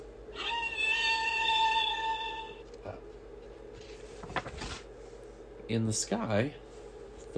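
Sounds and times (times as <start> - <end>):
whale call from a toy sound book: 0.3 - 2.6
speech: 5.7 - 6.7.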